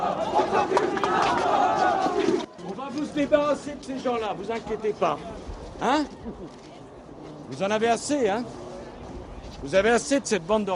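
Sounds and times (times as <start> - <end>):
crowd shouting and jeering at a housing estate: 0.0 - 2.5
speech: 3.1 - 6.7, 7.5 - 8.6, 9.6 - 10.7.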